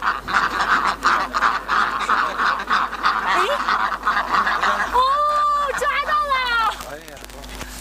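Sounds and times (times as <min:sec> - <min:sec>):
ducks quacking as they waddle home at dusk: 0:00.0 - 0:07.3.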